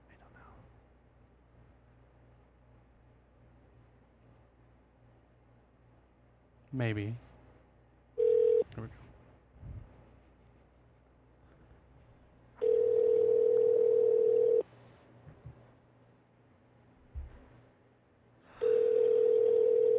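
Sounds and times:
speech: 6.7s - 7.3s
telephone dial tone and ringing while placing a call: 8.2s - 8.7s, 12.6s - 14.6s, 18.6s - 19.9s.

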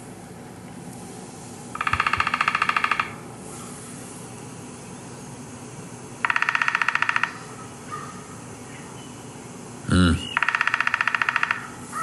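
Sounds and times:
downy woodpecker drumming: 1.7s - 3.2s, 6.2s - 8.2s, 10.2s - 12.0s.

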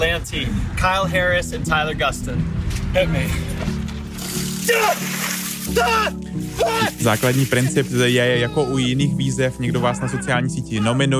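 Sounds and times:
speech: 0.0s - 3.8s, 4.7s - 11.1s
bucket of ice water dumped over a person: 3.9s - 8.4s.

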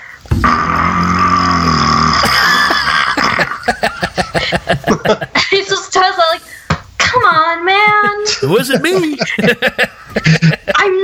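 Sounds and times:
voice imitating a long slow growling fart: 0.3s - 3.6s
laughter: 0.3s - 5.9s, 7.0s - 11.0s
speech: 3.7s - 6.4s, 8.4s - 11.0s.

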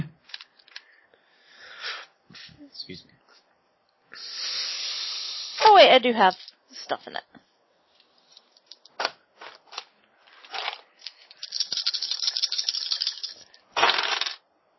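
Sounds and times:
speech: 2.8s - 3.2s, 5.8s - 7.5s
six-sided dice rattling and clattering: 8.3s - 14.4s.

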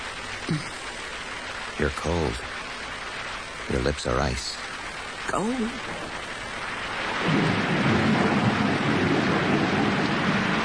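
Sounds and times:
heavy rain pouring down: 0.0s - 10.6s
speech: 0.5s - 0.8s, 1.8s - 2.6s, 3.7s - 4.6s, 5.3s - 6.3s, 7.2s - 7.6s
low thundery rumble: 5.8s - 10.6s.

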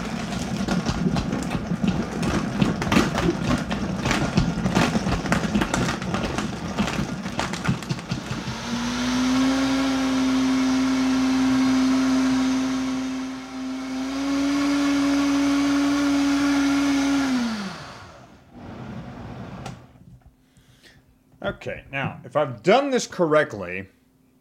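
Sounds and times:
blender blending smoothie with ice: 0.0s - 19.8s
speech: 21.6s - 24.0s.

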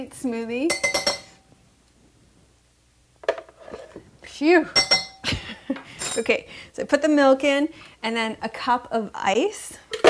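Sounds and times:
speech: 0.0s - 1.0s, 4.4s - 4.9s, 5.7s - 9.9s
metal spoon clinking while scooping pits out of fruit: 0.7s - 1.4s, 4.8s - 5.2s.

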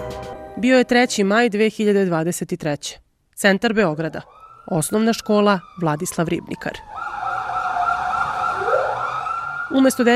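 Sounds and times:
speech: 0.6s - 7.3s, 9.7s - 10.1s
wailing sirens of ambulances and police cars on a blocked street: 3.9s - 10.1s.

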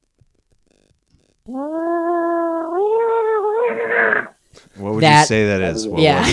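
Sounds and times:
speech: 1.5s - 2.1s, 4.2s - 6.3s
voice imitating a cat caught in a blender: 1.5s - 4.3s.

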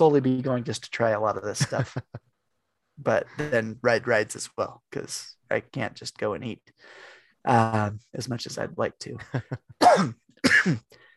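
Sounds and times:
speech: 0.0s - 2.2s, 3.0s - 11.0s
faint breath: 6.8s - 7.4s
harsh coughs with a throaty rasp: 9.8s - 11.0s.

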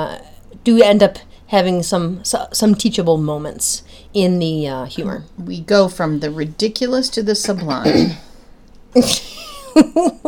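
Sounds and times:
speech: 0.0s - 8.3s, 8.9s - 10.2s
person clearing throat: 7.8s - 8.3s.

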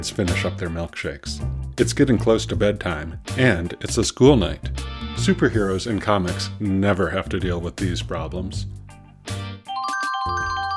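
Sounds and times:
speech: 0.0s - 9.4s
cell phone ringing with a bright melodic chiming tone: 9.7s - 10.7s.

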